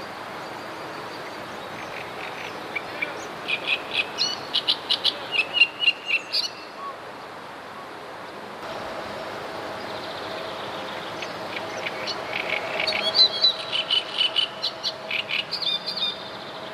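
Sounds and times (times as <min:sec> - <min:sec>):
great reed warbler singing: 0:00.0 - 0:07.4, 0:09.2 - 0:16.7.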